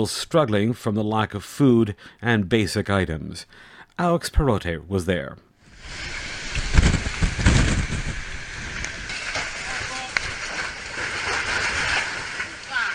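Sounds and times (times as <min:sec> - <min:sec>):
speech: 0:00.0 - 0:06.2
325 km/h storm winds carrying away a house on Koro Island: 0:05.6 - 0:12.9.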